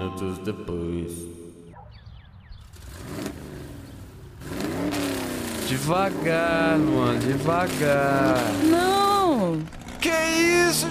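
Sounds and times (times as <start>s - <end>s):
speech: 0.0s - 1.4s, 5.7s - 10.8s
car engine revving and accelerating on a campus: 2.5s - 10.8s.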